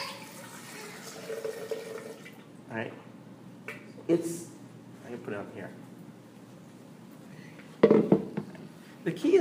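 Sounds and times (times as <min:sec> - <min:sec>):
liquid pouring into a container: 0:00.0 - 0:02.5
speech: 0:02.7 - 0:03.1, 0:04.1 - 0:04.5, 0:05.3 - 0:05.9, 0:09.0 - 0:09.3.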